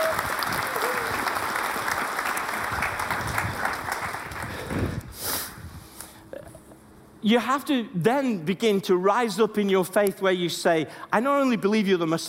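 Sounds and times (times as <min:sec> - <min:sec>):
audience applause: 0:00.0 - 0:05.0
speech: 0:07.2 - 0:12.2.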